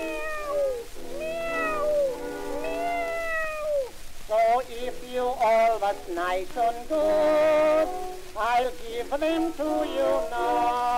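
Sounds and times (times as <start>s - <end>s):
cat meowing: 0.0s - 4.0s
speech: 5.2s - 10.9s.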